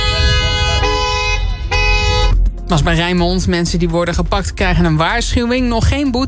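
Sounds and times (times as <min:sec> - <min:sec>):
car horns honking: 0:00.0 - 0:02.5
constant harmonic drone: 0:00.0 - 0:05.0
low rumble of engines: 0:00.0 - 0:06.2
speech: 0:02.7 - 0:06.2.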